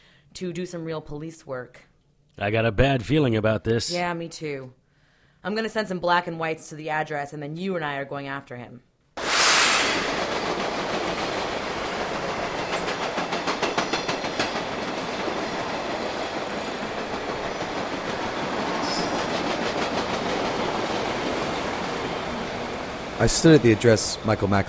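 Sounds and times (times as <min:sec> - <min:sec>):
speech: 0:00.4 - 0:04.8, 0:05.4 - 0:08.9, 0:23.2 - 0:24.6
brief hissing bursts from a train: 0:09.2 - 0:10.3
train rumbling on tracks: 0:09.2 - 0:24.6
train wheels clickety-clack over rail joints: 0:10.2 - 0:24.6.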